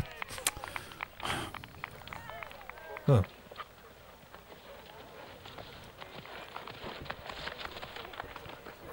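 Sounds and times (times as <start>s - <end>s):
hoofbeats of two jousting horses galloping: 0.0s - 8.9s
speech: 3.1s - 3.4s.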